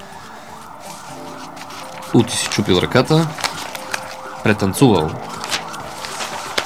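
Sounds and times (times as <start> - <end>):
ambulance siren wailing down the street: 0.0 - 6.6
constant hum of city traffic: 0.0 - 6.6
speech: 2.1 - 3.5, 4.4 - 5.3.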